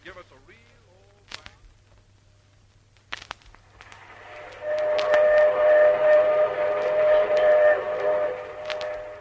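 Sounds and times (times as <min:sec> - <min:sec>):
Union Pacific train rumbling: 0:03.6 - 0:09.1
Union Pacific train steam whistle blowing: 0:03.8 - 0:09.1.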